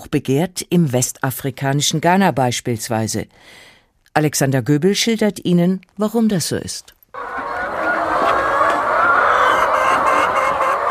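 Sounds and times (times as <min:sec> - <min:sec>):
speech: 0:00.0 - 0:07.5
hundreds of chickens clucking and squawking in a poultry barn: 0:07.2 - 0:10.8.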